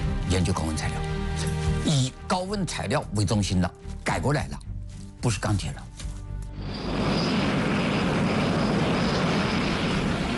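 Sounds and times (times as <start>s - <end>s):
speech: 0.4s - 5.9s
faint high whine of aircraft engine: 6.5s - 10.3s
aircraft engine roaring: 6.6s - 10.3s.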